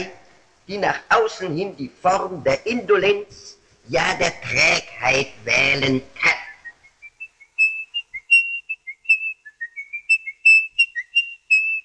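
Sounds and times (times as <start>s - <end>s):
speech: 0.0s - 6.4s
person whistling a wavering tune: 6.4s - 11.8s.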